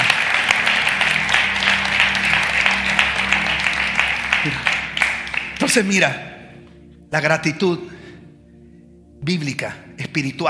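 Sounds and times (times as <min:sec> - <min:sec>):
crowd applause in a large room: 0:00.0 - 0:06.0
low hum: 0:00.0 - 0:10.0
speech: 0:04.4 - 0:04.7, 0:05.7 - 0:06.3, 0:07.1 - 0:08.0, 0:09.2 - 0:10.4.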